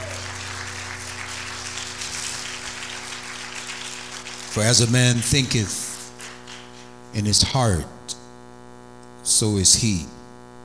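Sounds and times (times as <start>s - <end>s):
congregation clapping hands: 0.0s - 7.1s
low sustained hum: 0.0s - 9.0s
speech: 4.5s - 5.9s, 7.1s - 8.0s, 9.2s - 10.2s.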